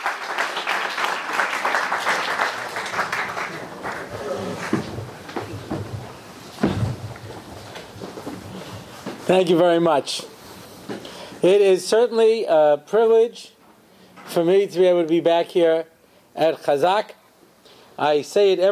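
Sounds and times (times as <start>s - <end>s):
crowd applauding with dense continuous clapping: 0.0s - 5.4s
faint murmurs: 3.3s - 6.1s
speech: 9.3s - 10.3s, 11.4s - 13.6s, 14.3s - 17.2s, 18.0s - 18.7s.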